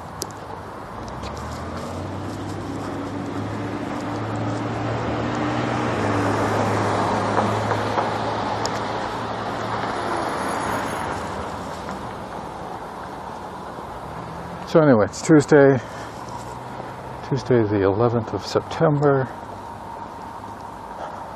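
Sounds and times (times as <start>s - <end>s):
morning traffic roar at a busy road intersection: 0.0s - 21.3s
speech: 14.7s - 16.0s, 17.3s - 19.4s.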